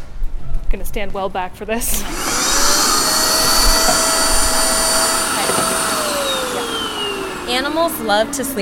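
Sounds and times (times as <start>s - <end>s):
speech: 0.7s - 2.3s, 7.6s - 8.6s
vacuum cleaner vacuuming out an emptied instrument case: 1.9s - 8.6s.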